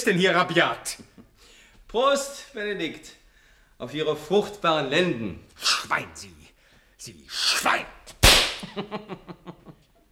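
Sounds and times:
speech: 0.0s - 1.0s, 1.9s - 3.2s, 3.8s - 6.4s, 7.0s - 8.0s, 8.7s - 9.6s
pistol shot: 8.2s - 8.7s
laughter: 8.6s - 9.9s.

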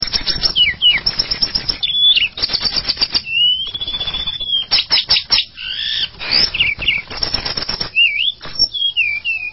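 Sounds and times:
Java sparrow song with clicking bursts and whistles: 0.0s - 9.5s.

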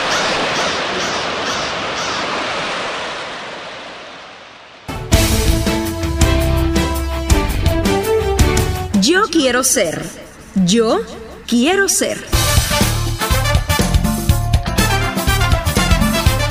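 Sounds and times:
sea waves roaring in a steady wash of surf: 0.0s - 10.6s
music: 4.9s - 16.4s
speech: 9.4s - 12.4s.

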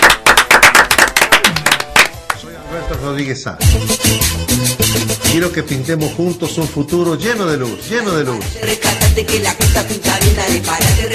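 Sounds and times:
applause greeting a winner's announcement: 0.0s - 2.5s
speech: 2.7s - 11.1s.

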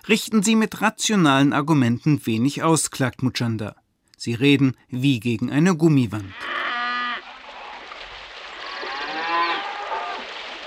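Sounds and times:
speech: 0.0s - 6.7s
cattle mooing: 6.4s - 7.2s, 8.6s - 10.4s.

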